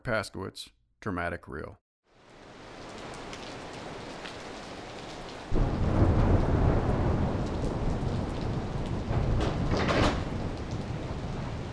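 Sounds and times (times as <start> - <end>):
speech: 0.0 - 1.8
heavy rain: 2.1 - 11.7
deep rumbles of thunder: 5.5 - 11.7.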